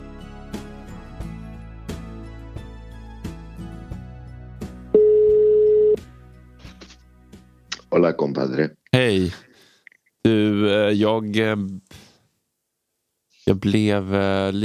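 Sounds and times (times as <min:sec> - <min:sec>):
telephone ringback tone while calling: 0:05.0 - 0:06.0
speech: 0:07.9 - 0:09.5, 0:10.2 - 0:12.0, 0:13.5 - 0:14.6.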